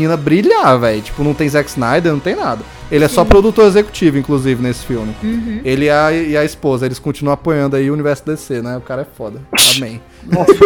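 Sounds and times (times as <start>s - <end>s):
speech: 0.0s - 10.6s
person sneezing: 9.5s - 10.0s.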